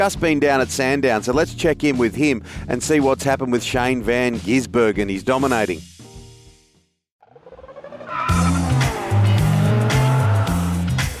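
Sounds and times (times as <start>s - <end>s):
speech: 0.0s - 5.9s
race car tires squealing: 7.3s - 11.0s
race car engines revving and roaring: 7.6s - 11.0s.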